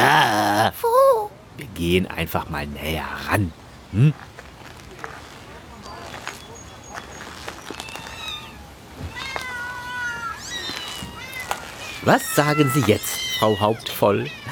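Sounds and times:
speech: 0:00.7 - 0:04.3, 0:12.0 - 0:14.5
many cats meowing: 0:07.2 - 0:14.5.

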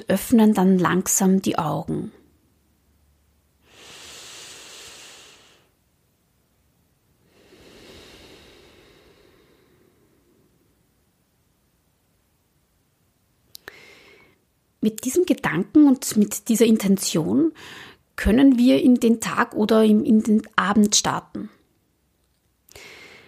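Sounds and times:
speech: 0:00.0 - 0:02.2, 0:14.8 - 0:21.6
deep breath taken during guided meditation: 0:03.6 - 0:05.8, 0:07.2 - 0:10.7, 0:13.6 - 0:14.4, 0:17.6 - 0:18.1, 0:22.7 - 0:23.2.

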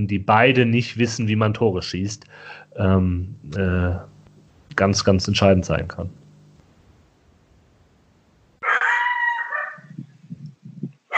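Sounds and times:
speech: 0:00.0 - 0:04.1, 0:04.8 - 0:06.2
low grumbling: 0:02.8 - 0:08.6
dog howling: 0:08.6 - 0:10.0.

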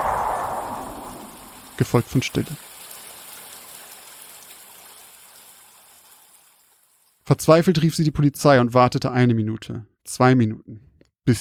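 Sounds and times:
steady rain falling: 0:00.0 - 0:07.2
speech: 0:01.8 - 0:02.7, 0:07.3 - 0:11.3.

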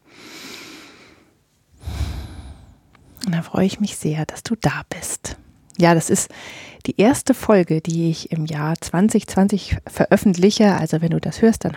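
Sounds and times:
deep breath in and out: 0:00.0 - 0:03.2, 0:06.3 - 0:06.8
speech: 0:03.2 - 0:11.7.

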